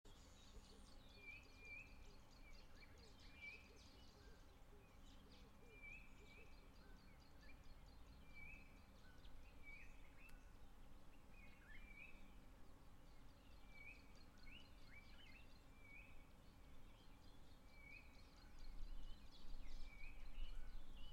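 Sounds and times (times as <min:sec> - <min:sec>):
procedural grass terrain ambience: 0:00.1 - 0:21.1.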